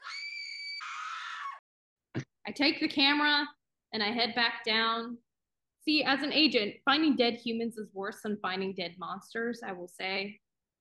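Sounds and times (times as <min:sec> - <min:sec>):
loud high-pitched scream sound effect breaking into a strained wail: 0:00.0 - 0:01.6
speech: 0:02.2 - 0:05.2, 0:05.8 - 0:10.4.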